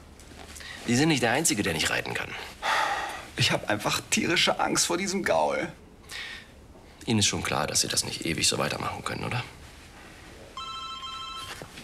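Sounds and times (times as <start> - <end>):
speech: 0.8 - 2.6, 3.4 - 6.3, 7.1 - 9.6
telephone ringing with an electronic trill: 10.6 - 11.7.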